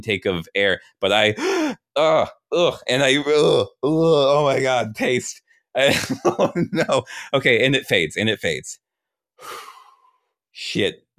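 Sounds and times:
speech: 0:00.0 - 0:08.8, 0:09.4 - 0:09.7, 0:10.6 - 0:11.1
person gasping with strained groaning breaths: 0:01.4 - 0:01.9, 0:07.0 - 0:07.4, 0:09.4 - 0:10.2
laughter: 0:05.9 - 0:07.1.

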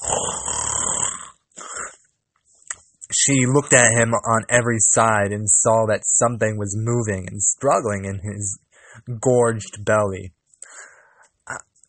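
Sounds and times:
person imitating a wolf snoring loudly: 0:00.0 - 0:02.0
speech: 0:03.2 - 0:10.9.

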